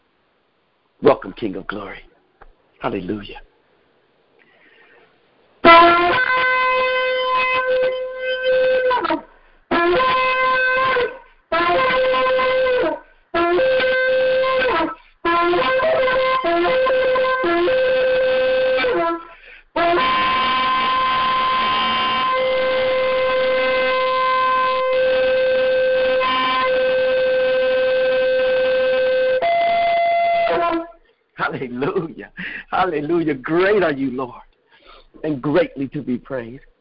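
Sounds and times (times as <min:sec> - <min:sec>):
speech: 0:01.0 - 0:02.1, 0:02.8 - 0:03.5, 0:32.9 - 0:34.4, 0:35.2 - 0:36.7
shofar ram's horn blasts: 0:05.6 - 0:33.2.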